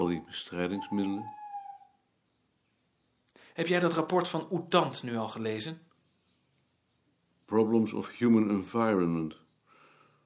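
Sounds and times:
speech: 0.0 - 1.4, 3.6 - 5.9, 7.5 - 9.4
owl hooting: 0.6 - 2.0.

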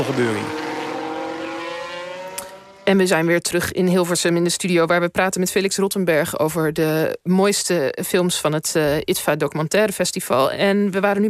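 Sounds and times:
speech: 0.0 - 0.6, 2.9 - 11.2
Formula 1 race car high-pitched engine whine on a soaking wet track: 0.0 - 2.9.

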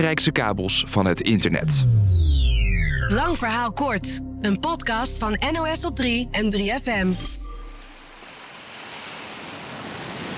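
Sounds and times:
speech: 0.0 - 2.2, 3.1 - 7.4
Atlantic Ocean surf breaking: 8.2 - 10.3.

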